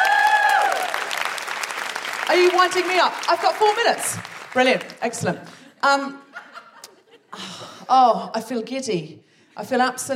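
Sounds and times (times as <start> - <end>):
audience applauding: 0.0 - 5.5
speech: 2.3 - 6.2, 7.9 - 10.1.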